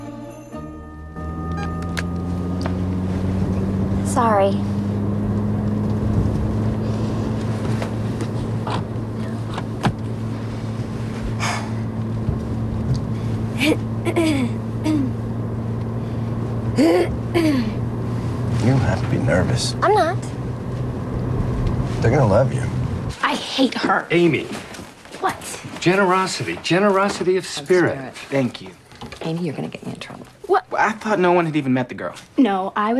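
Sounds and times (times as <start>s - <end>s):
car engine drone in the cabin: 0.0s - 23.3s
speech: 4.2s - 4.8s, 19.6s - 20.3s, 22.0s - 22.7s, 23.6s - 24.7s, 25.8s - 32.9s.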